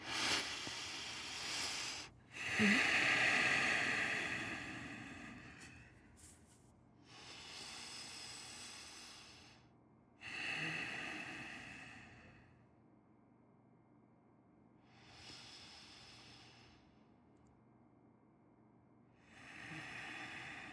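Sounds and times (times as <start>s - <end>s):
slow deep breathing: 0.0s - 12.7s, 14.8s - 17.1s, 19.2s - 20.7s.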